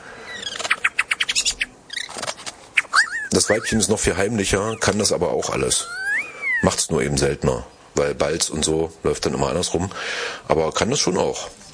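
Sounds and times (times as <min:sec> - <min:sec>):
bird calling in bright rhythmic chirps: 0:00.2 - 0:05.0, 0:05.8 - 0:06.8
speech: 0:03.4 - 0:06.0, 0:06.7 - 0:11.6.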